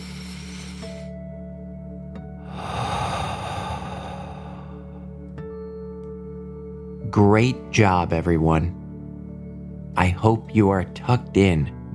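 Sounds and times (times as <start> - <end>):
deep breath in and out during a bedtime relaxation: 0.0 - 1.4, 2.4 - 5.3
gentle musical drone: 0.0 - 11.9
speech: 7.1 - 8.8, 10.0 - 11.9.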